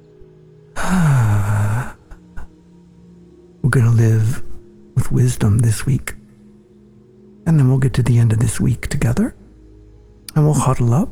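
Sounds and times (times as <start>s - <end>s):
deep breath released as a long voiced sigh: 0.8s - 2.5s
speech: 3.7s - 4.5s, 5.1s - 6.2s, 7.5s - 9.4s, 10.4s - 11.1s.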